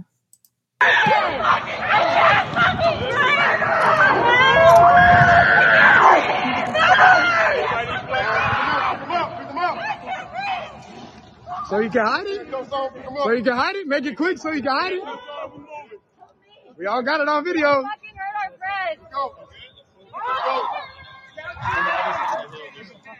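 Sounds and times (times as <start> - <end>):
people shouting and screaming while being arrested in Atlanta: 0.8 - 13.2, 20.0 - 23.1
speech: 11.7 - 15.6, 16.8 - 18.0.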